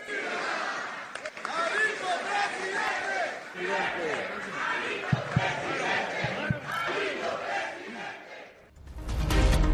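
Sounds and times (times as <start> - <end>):
crowd of political supporters chanting rally cries: 0.0 - 8.7
sharp knocks: 5.1 - 6.8.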